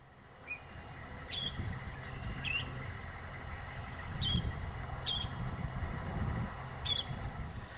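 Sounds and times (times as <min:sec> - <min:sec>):
heavy low wind rumble: 0:00.0 - 0:07.7
Northern Shrike giving short squeaky calls: 0:00.4 - 0:03.0, 0:04.1 - 0:05.4, 0:06.8 - 0:07.2.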